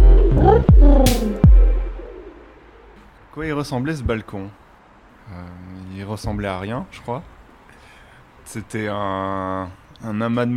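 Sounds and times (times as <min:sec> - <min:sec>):
airy whoosh: 0:00.0 - 0:03.1
pigeons cooing: 0:00.0 - 0:03.1
speech: 0:03.4 - 0:04.6, 0:05.3 - 0:07.3, 0:08.5 - 0:10.5.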